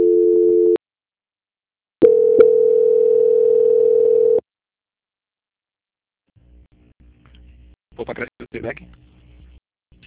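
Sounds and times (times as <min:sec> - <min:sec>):
telephone line tone while a call is transferred: 0:00.0 - 0:00.8, 0:02.0 - 0:04.4
speech: 0:08.0 - 0:09.1.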